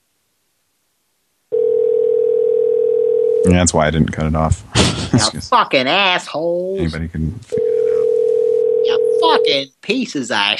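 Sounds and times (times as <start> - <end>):
telephone dial tone while calling back: 1.5 - 3.4, 7.6 - 9.5
speech: 3.4 - 7.6, 9.2 - 10.5.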